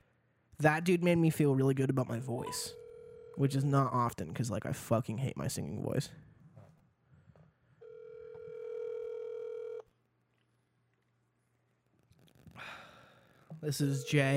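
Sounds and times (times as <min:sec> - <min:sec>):
speech: 0:00.6 - 0:02.8, 0:03.4 - 0:06.3, 0:13.6 - 0:14.3
phone line electronic ringing tone: 0:02.5 - 0:03.6, 0:07.8 - 0:09.9, 0:13.7 - 0:14.3.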